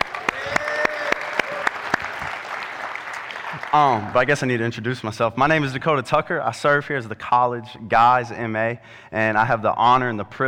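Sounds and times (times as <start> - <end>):
audience applauding and cheering at a church gathering: 0.0 - 4.5
speech: 3.7 - 10.4.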